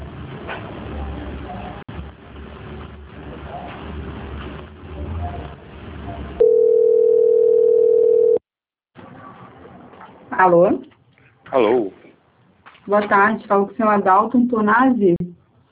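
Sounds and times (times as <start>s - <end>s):
long steady mid-pitched telephone line beep during a bank call transfer: 6.4s - 8.4s
speech: 10.4s - 10.9s, 11.5s - 12.0s, 12.9s - 15.4s.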